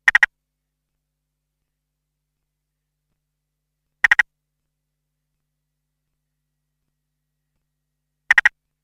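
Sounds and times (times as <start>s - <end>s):
Limnodynastes tasmaniensis spotted grass frog calling: 0.0s - 0.3s, 4.0s - 4.3s, 8.3s - 8.6s.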